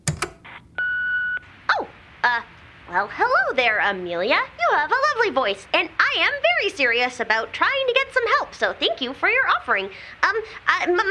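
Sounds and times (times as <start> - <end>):
sharp clicks: 0.0 - 0.7
electronic beep of an answering machine playing back a new message: 0.0 - 1.4
speech: 2.2 - 11.1.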